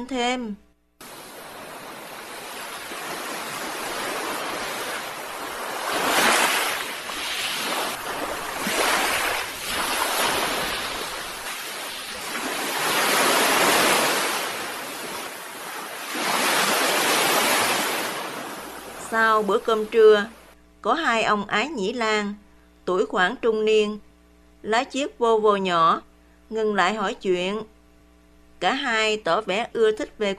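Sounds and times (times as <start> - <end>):
speech: 0.0 - 0.7, 19.1 - 27.8, 28.6 - 30.3
ocean waves crashing on rock slabs: 1.0 - 19.0.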